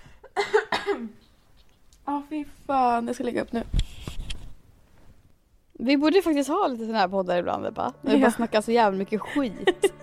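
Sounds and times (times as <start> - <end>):
person coughing: 0.2 - 1.3
speech: 2.1 - 3.9, 5.8 - 9.9.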